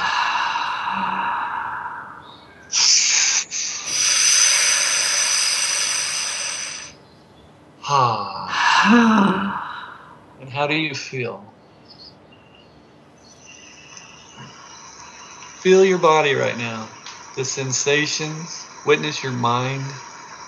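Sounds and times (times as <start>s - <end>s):
slow breathing in and out during a guided meditation: 0.0s - 7.0s, 8.5s - 10.4s, 13.4s - 20.4s
speech: 8.9s - 9.4s, 10.6s - 11.6s, 15.6s - 20.1s.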